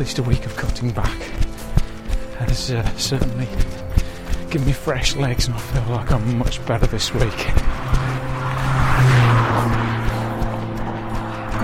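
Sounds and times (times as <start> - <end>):
speech: 0.0 - 1.4, 2.4 - 3.8, 4.5 - 8.0
car driving fast past with engine roar and whine: 6.2 - 11.6.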